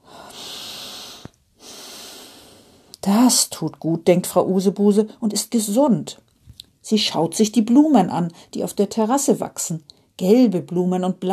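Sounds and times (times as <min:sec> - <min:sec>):
woman on a terrace drawing a deep breath of fresh air: 0:00.0 - 0:03.0
speech: 0:03.0 - 0:06.3, 0:06.9 - 0:11.3.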